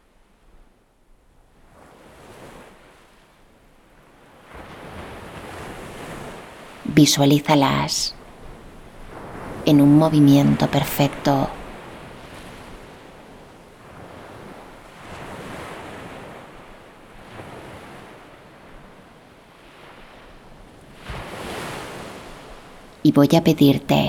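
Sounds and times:
ocean surf rolling in: 0:04.3 - 0:24.0
speech: 0:06.9 - 0:08.2, 0:09.7 - 0:11.6, 0:23.0 - 0:24.0.

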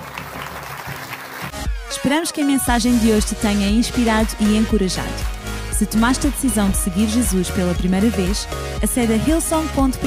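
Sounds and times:
audience at a church service applauding after a prayer: 0:00.0 - 0:02.3
speech: 0:01.9 - 0:10.0.

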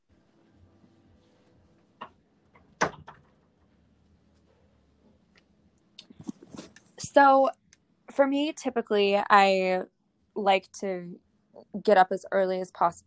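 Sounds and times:
door being pushed shut: 0:02.8 - 0:03.2
speech: 0:07.2 - 0:07.6, 0:08.2 - 0:13.0.

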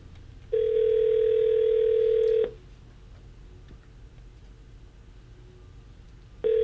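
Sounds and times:
electronic telephone dial tone: 0:00.5 - 0:02.6, 0:06.4 - 0:06.6.

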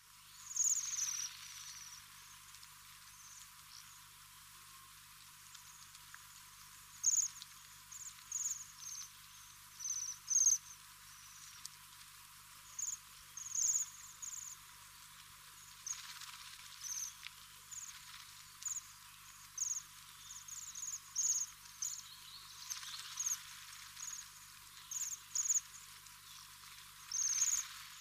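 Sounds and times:
faint hiss: 0:00.0 - 0:28.0
waxwings giving high thin buzzing trills: 0:00.2 - 0:02.4, 0:07.0 - 0:11.6, 0:12.6 - 0:14.6, 0:15.7 - 0:28.0.

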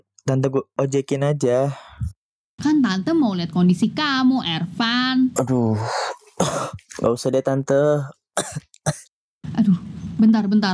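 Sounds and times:
speech: 0:00.3 - 0:10.7
rough throaty hacking: 0:05.4 - 0:07.1, 0:08.4 - 0:09.1
sharp coughs: 0:05.9 - 0:06.9, 0:08.4 - 0:09.1.

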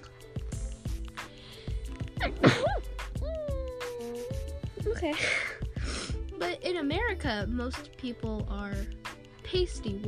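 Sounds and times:
rhythmic music with a regular beat: 0:00.0 - 0:10.0
single sharp sneeze: 0:02.2 - 0:02.8
speech: 0:05.0 - 0:05.6, 0:06.7 - 0:10.0.

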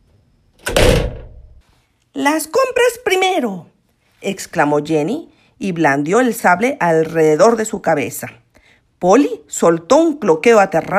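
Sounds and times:
garden gate slamming shut: 0:00.6 - 0:01.6
speech: 0:02.2 - 0:08.4, 0:09.0 - 0:10.9.

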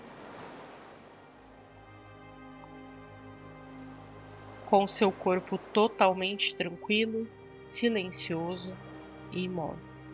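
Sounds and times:
faint sustained tone: 0:00.0 - 0:10.1
quiet steady hum of surf: 0:00.0 - 0:10.1
soft ocean wave washing in on a beach: 0:00.0 - 0:10.1
speech: 0:04.7 - 0:09.9.

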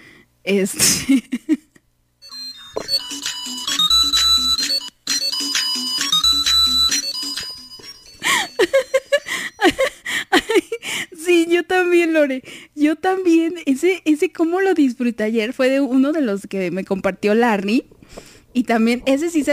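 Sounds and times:
speech: 0:00.4 - 0:01.6, 0:12.0 - 0:19.5
laughter: 0:01.0 - 0:01.8, 0:08.6 - 0:10.8
tinny Christmas bell melody from a video through a phone speaker: 0:02.2 - 0:10.8.

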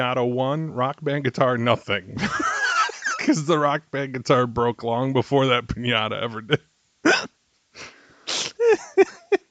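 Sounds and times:
speech: 0:00.0 - 0:02.6, 0:03.2 - 0:06.7
laughter: 0:02.2 - 0:03.6, 0:08.6 - 0:09.5
person sneezing: 0:07.1 - 0:08.8
short voiced grunts or sniffles: 0:07.8 - 0:08.8.

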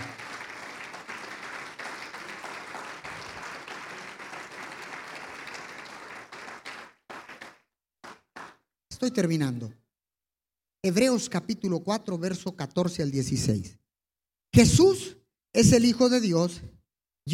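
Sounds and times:
audience applauding during a church service: 0:00.0 - 0:08.6
speech: 0:09.0 - 0:09.8, 0:10.8 - 0:13.8, 0:14.5 - 0:17.3.

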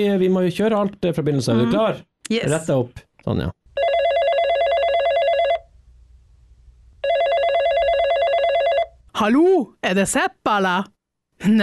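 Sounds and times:
speech: 0:00.0 - 0:03.6, 0:09.2 - 0:11.6
telephone ringing with a buzzy electronic trill: 0:03.8 - 0:05.7, 0:07.0 - 0:09.0.

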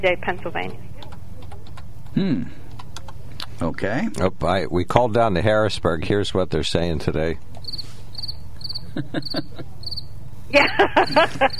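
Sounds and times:
speech: 0:00.0 - 0:01.0, 0:02.2 - 0:02.6, 0:03.6 - 0:07.9, 0:09.0 - 0:09.8, 0:10.5 - 0:11.5
crickets chirping: 0:07.6 - 0:10.2, 0:11.0 - 0:11.5
laughter: 0:08.9 - 0:09.9, 0:10.5 - 0:11.5.

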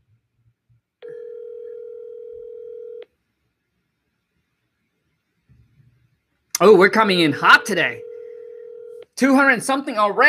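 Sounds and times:
telephone call ringing unanswered: 0:01.0 - 0:03.0, 0:07.5 - 0:09.0
speech: 0:06.6 - 0:08.1, 0:09.2 - 0:10.2.

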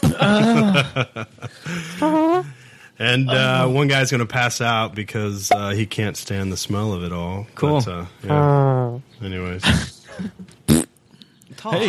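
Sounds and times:
laughter: 0:00.0 - 0:02.2
speech: 0:00.1 - 0:01.7, 0:03.1 - 0:10.4, 0:11.6 - 0:11.8
mouth-made fart noise: 0:08.3 - 0:09.1, 0:10.6 - 0:11.0.

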